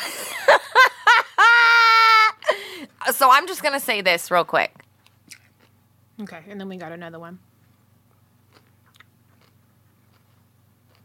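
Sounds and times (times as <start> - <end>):
laughter: 0.0 - 2.5
speech: 3.2 - 4.8, 6.2 - 7.5
wet chewing of food: 8.1 - 11.0
crunchy bites of food: 8.4 - 11.0.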